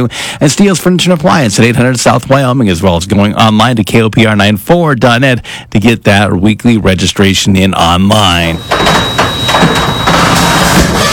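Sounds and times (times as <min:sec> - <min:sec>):
speech: 0:00.0 - 0:09.9
noisy garage door grinding and rattling: 0:08.6 - 0:11.1
sharp clanks of garage door: 0:08.6 - 0:11.1.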